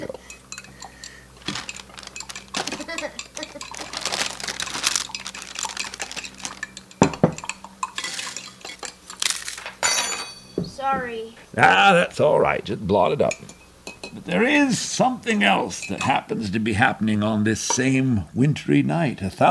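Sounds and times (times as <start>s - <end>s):
cutlery clinking and scraping against cookware while stirring a pot: 0.0s - 10.5s, 13.2s - 14.4s, 15.6s - 16.2s
cookware clattering: 0.0s - 11.2s, 13.2s - 16.4s
speech: 10.8s - 19.5s.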